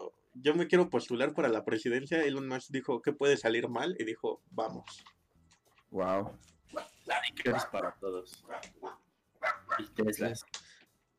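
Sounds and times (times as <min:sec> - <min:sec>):
speech: 0:00.4 - 0:05.2, 0:05.9 - 0:09.0, 0:09.8 - 0:10.6
dog barking: 0:06.7 - 0:10.0.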